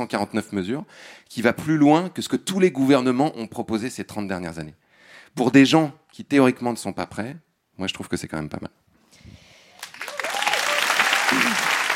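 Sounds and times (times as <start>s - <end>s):
speech: 0.0s - 9.4s
audience applause: 9.8s - 11.9s.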